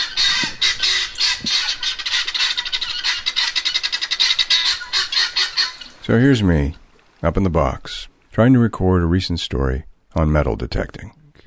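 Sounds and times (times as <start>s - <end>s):
guinea hens calling: 0.0s - 6.4s
speech: 6.1s - 11.2s.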